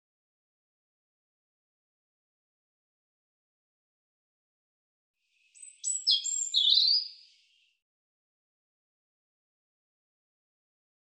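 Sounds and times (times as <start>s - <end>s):
European robin singing: 5.4s - 7.8s.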